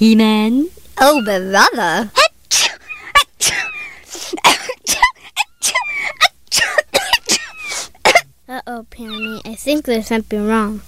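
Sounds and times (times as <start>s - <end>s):
speech: 0.0s - 2.2s, 3.4s - 3.6s, 8.5s - 10.8s
sneezing: 2.2s - 8.3s.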